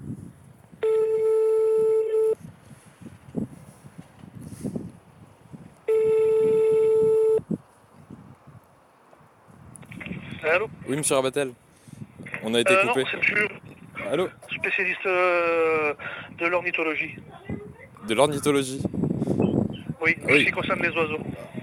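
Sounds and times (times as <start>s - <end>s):
telephone ringing tone while calling someone back: 0.8s - 2.4s, 5.9s - 7.5s
speech: 10.5s - 11.7s, 12.5s - 17.3s, 18.1s - 19.3s, 20.0s - 21.5s.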